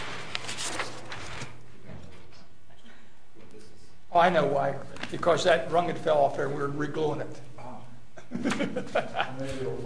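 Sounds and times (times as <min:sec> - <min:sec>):
chair scraping across a hard floor at a council meeting: 0:00.0 - 0:02.2
speech: 0:04.2 - 0:07.5, 0:08.3 - 0:09.8
laughter: 0:08.2 - 0:09.8.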